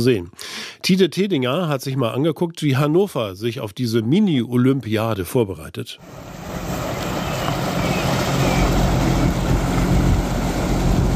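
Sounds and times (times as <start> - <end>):
speech: 0.0 - 6.6
tugboat engines rumbling while towing a floating stage across a lake: 6.0 - 11.1
water noise on a lake: 6.0 - 11.1
wind over a lake: 6.0 - 11.1.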